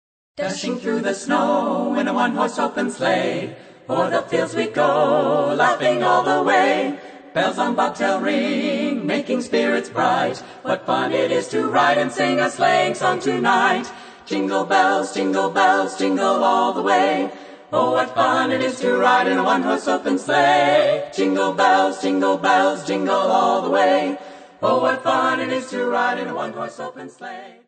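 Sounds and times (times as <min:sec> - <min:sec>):
traditional christmas song: 0:00.4 - 0:27.6.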